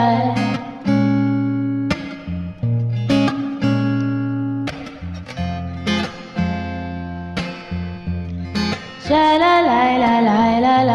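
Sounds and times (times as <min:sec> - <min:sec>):
person singing shalala: 0:00.0 - 0:01.0, 0:09.0 - 0:10.9
guitar: 0:00.0 - 0:10.9.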